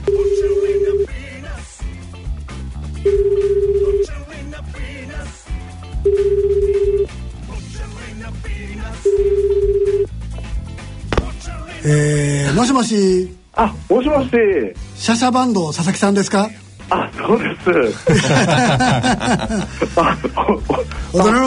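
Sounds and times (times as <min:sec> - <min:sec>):
phone line ringback tone: 0:00.0 - 0:01.2, 0:03.0 - 0:04.1, 0:06.0 - 0:07.1, 0:09.0 - 0:10.1
music: 0:00.0 - 0:21.4
speech: 0:12.6 - 0:21.4
laughter: 0:17.9 - 0:21.1.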